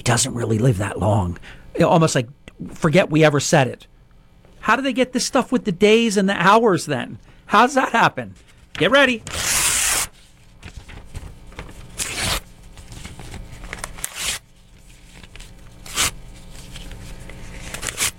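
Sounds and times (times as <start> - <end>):
speech: 0.0 - 3.9, 4.6 - 9.5
paper being torn into small pieces: 8.8 - 18.1.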